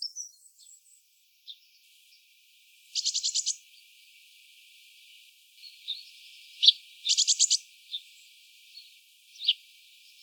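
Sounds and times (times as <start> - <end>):
Eurasian blue tit Cyanistes caeruleus calls: 3.0 - 3.6, 5.9 - 8.0, 9.3 - 9.6.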